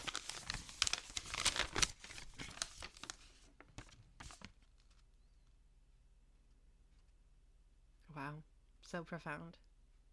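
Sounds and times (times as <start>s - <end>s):
paper being unfolded and crinkled: 0.0s - 5.1s
speech: 8.3s - 9.7s.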